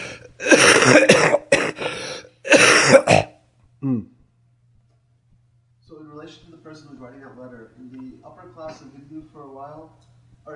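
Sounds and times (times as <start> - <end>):
person coughing: 0.0 - 4.0
throat-clearing grunt: 0.4 - 4.2.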